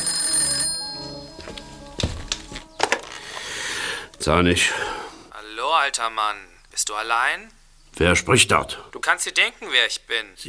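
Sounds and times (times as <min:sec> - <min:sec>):
telephone ringing in a house: 0:00.0 - 0:03.2
receiver clunks and knocks: 0:02.0 - 0:03.1
speech: 0:04.2 - 0:04.9, 0:05.8 - 0:10.4.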